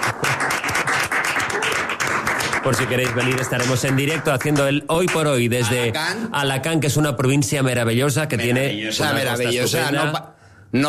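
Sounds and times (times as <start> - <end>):
audience applause: 0.0 - 5.3
speech: 2.6 - 10.8.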